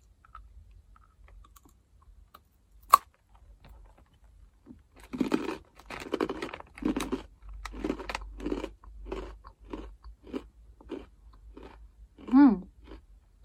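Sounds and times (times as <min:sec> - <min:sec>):
person chewing crunchy food: 0:04.8 - 0:13.4.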